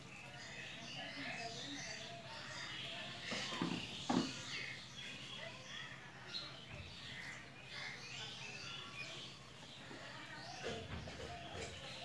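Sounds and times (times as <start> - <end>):
birds chirping and twittering: 0.0 - 12.0
faint voices: 0.0 - 12.0.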